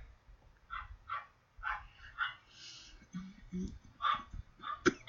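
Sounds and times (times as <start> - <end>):
deep black Labrador dog barks: 0.7 - 2.4, 4.0 - 4.9.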